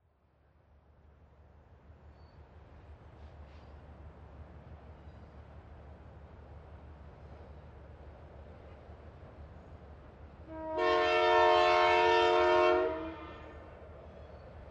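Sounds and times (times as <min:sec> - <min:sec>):
train passing: 0:01.4 - 0:14.7
train horn: 0:10.4 - 0:13.7.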